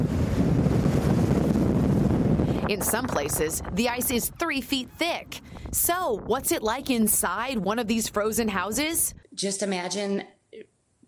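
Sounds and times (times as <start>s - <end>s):
surf churning by the lake shore: 0.0s - 7.4s
strong gusty gale force wind by the lake shore: 0.0s - 9.2s
speech: 2.7s - 10.7s.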